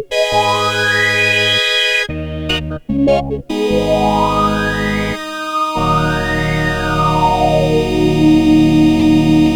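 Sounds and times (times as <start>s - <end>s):
Moog Polymoog synthesizer presets: 0.1s - 9.5s.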